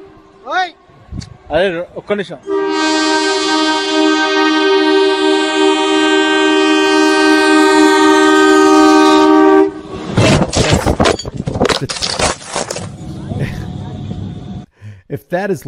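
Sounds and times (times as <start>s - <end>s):
train rumbling and clattering along the tracks: 0.0s - 11.6s, 12.9s - 14.7s
train horn blaring: 2.3s - 10.2s
people talking: 13.1s - 14.3s, 15.1s - 15.6s.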